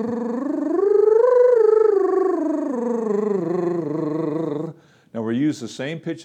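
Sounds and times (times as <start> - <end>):
speech: 0.0 - 0.3, 5.5 - 6.2
tongue trill sung as a vocal exercise: 0.0 - 4.8.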